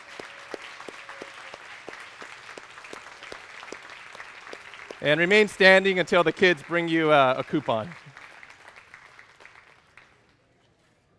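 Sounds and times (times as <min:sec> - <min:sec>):
congregation clapping: 0:00.0 - 0:10.4
speech: 0:05.0 - 0:08.0.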